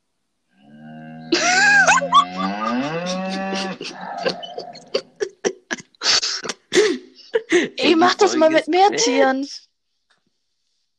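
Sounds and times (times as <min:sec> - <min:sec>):
cow mooing: 0:00.6 - 0:01.4, 0:02.1 - 0:05.0
laughter: 0:01.3 - 0:09.2
speech: 0:03.8 - 0:04.9, 0:08.1 - 0:09.7.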